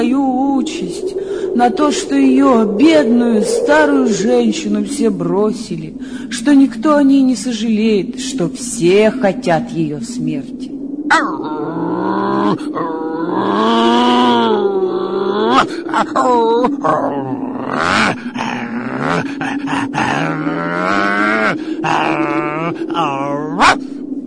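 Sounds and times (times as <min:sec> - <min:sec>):
speech: 0:00.0 - 0:14.8, 0:15.4 - 0:18.3, 0:19.0 - 0:23.9
dog at a fence barking: 0:23.6 - 0:23.8.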